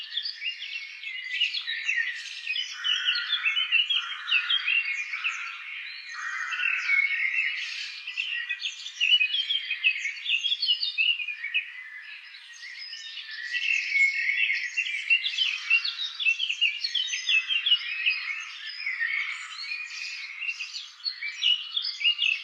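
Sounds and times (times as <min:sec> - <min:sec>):
birds in Gueret: 0:00.0 - 0:22.4.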